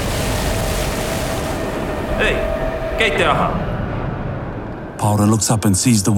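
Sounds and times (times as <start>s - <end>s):
rushing flood water: 0.0s - 3.6s
speech: 2.2s - 3.7s, 5.0s - 6.1s.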